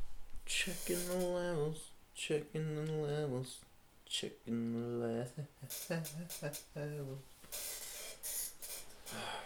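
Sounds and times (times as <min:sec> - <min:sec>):
airy hissing bursts: 0:00.5 - 0:01.8, 0:05.6 - 0:09.4
speech: 0:00.6 - 0:07.7
chair squeaking: 0:00.7 - 0:01.5, 0:05.7 - 0:06.8, 0:07.4 - 0:09.3.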